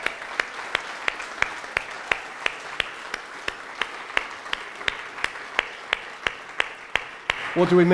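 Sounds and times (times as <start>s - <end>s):
group applauding in a large room: 0.0s - 7.9s
speech: 7.6s - 7.9s.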